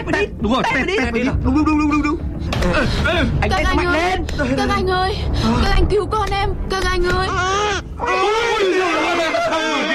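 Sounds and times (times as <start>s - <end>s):
speech: 0.0s - 9.9s
newborn baby crying just after delivery: 7.2s - 9.2s.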